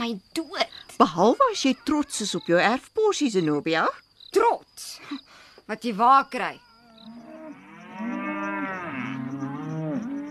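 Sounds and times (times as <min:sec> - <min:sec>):
speech: 0:00.0 - 0:07.2
cow mooing: 0:06.8 - 0:10.2.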